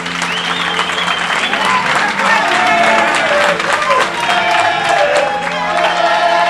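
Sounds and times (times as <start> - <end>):
crowd of shop staff and onlookers cheering at store doors: 0.0 - 6.4
shop staff and onlookers clapping: 0.0 - 6.4
crowd of shop staff and onlookers chanting a name in unison: 2.1 - 6.4.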